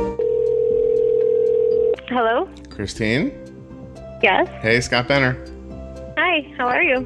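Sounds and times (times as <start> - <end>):
telephone ringback tone: 0.2 - 2.0
speech: 2.2 - 3.4, 4.2 - 5.5, 6.4 - 7.0.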